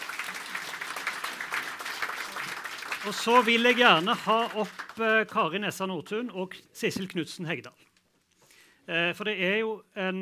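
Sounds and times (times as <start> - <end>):
crowd clapping: 0.0 - 5.8
speech: 3.0 - 7.8, 8.9 - 10.2.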